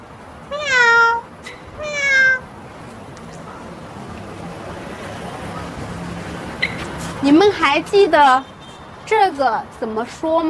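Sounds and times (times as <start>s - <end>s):
steady low outdoor noise: 0.0s - 10.4s
cat meowing: 0.5s - 2.5s
speech: 7.3s - 8.5s, 9.1s - 10.4s.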